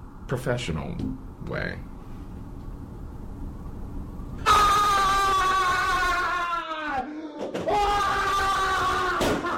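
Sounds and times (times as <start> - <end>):
speech: 0.3 - 1.9
person screaming in frustration: 4.4 - 9.5.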